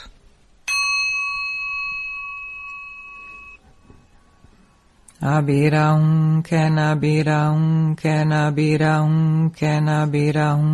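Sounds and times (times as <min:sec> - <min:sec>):
single bell struck during a mantra recitation: 0:00.7 - 0:03.7
speech: 0:05.2 - 0:10.7.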